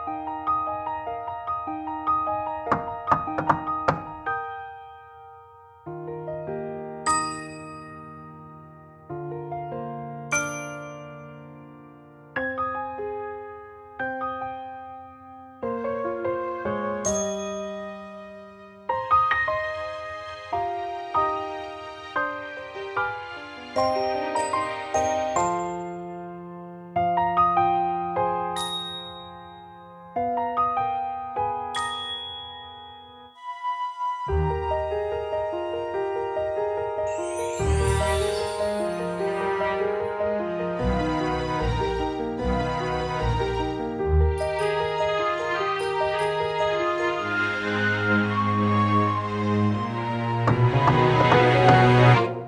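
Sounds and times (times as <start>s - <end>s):
instrumental song: 0.1s - 12.9s, 13.6s - 52.4s.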